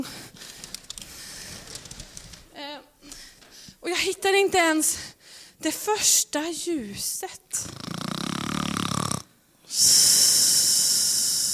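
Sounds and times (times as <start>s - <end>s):
speech: 3.9s - 7.7s
person sitting asleep snoring: 7.6s - 11.5s.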